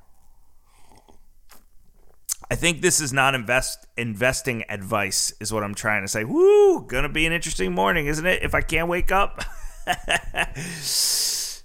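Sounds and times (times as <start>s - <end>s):
person sipping coffee with soft slurping: 0.0s - 2.5s
brief breathy swallow: 0.1s - 2.5s
speech: 2.5s - 11.3s
laughter: 9.4s - 10.7s.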